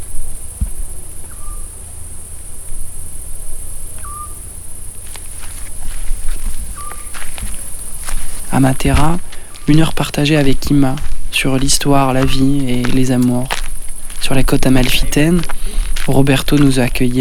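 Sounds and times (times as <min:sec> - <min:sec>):
crickets chirping at night: 0:00.0 - 0:17.1
short tonal calls: 0:00.0 - 0:17.1
soft scuffing footsteps: 0:00.5 - 0:01.4, 0:03.9 - 0:17.1
speech: 0:08.6 - 0:13.6, 0:14.2 - 0:17.1.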